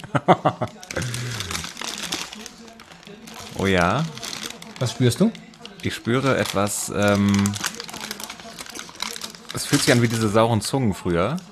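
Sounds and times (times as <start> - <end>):
laughter: 0.0 - 1.7
faint low voice murmuring: 0.0 - 10.2
speech: 0.2 - 0.8, 3.6 - 4.2, 4.8 - 7.7, 9.6 - 11.5
crinkly small bag being rummaged: 0.8 - 10.5.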